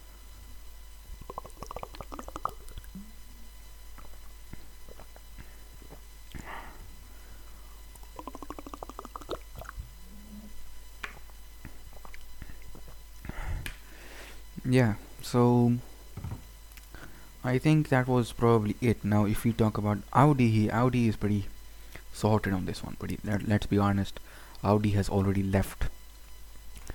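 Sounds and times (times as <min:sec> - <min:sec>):
person gulping and swallowing water: 0:01.2 - 0:06.5, 0:07.9 - 0:09.9, 0:11.7 - 0:13.3
speech: 0:14.7 - 0:15.9, 0:17.5 - 0:21.5, 0:22.2 - 0:25.9.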